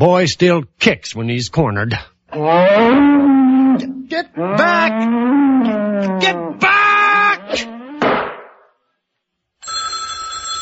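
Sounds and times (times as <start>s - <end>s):
speech: 0.0s - 6.7s
telephone bell ringing: 9.6s - 10.6s.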